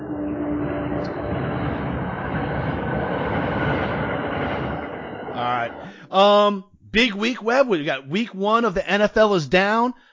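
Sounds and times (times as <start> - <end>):
low droning hum: 0.0 - 6.5
train engine and wheels rumbling past: 0.0 - 6.5
speech: 6.1 - 10.1.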